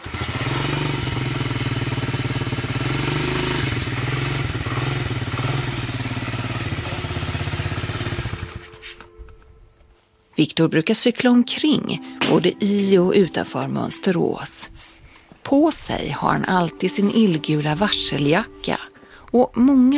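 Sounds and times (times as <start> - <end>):
small moped engine running with a buzzing rattle: 0.0 - 9.1
speech: 10.4 - 14.9, 15.5 - 19.9.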